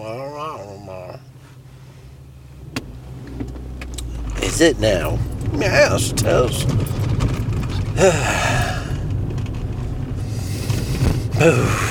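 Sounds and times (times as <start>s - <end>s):
steady hum: 0.0s - 11.8s
speech: 4.5s - 7.1s, 8.0s - 8.6s, 11.4s - 11.8s
deep cleansing yoga breaths: 7.9s - 9.1s, 10.2s - 11.8s.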